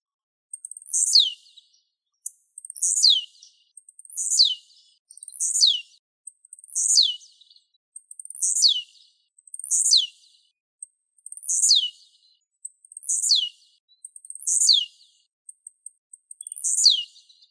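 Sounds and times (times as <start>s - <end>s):
bird song of buzzy phrases sliding steeply downward: 0.1s - 15.3s, 16.1s - 17.5s
speech: 1.0s - 1.4s.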